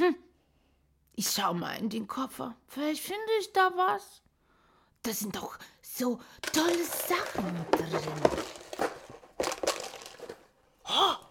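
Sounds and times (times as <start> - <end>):
speech: 1.2 - 4.2, 5.0 - 9.0
bag of cookies crinkling and rustling: 6.4 - 10.6.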